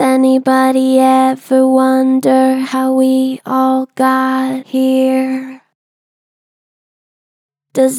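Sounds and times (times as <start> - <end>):
person singing: 0.0 - 5.6, 7.8 - 7.9.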